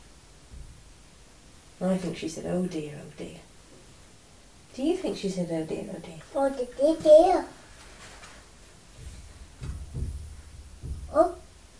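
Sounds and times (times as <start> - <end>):
speech: 1.8 - 3.5, 4.8 - 7.6, 11.2 - 11.4
hammer banging heard through a wall from next door: 8.9 - 11.7.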